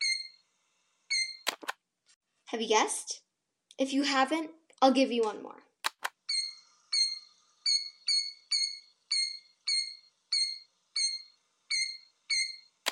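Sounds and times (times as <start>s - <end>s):
speech: 2.5s - 3.2s, 3.8s - 5.7s
killdeer calling: 6.3s - 12.6s.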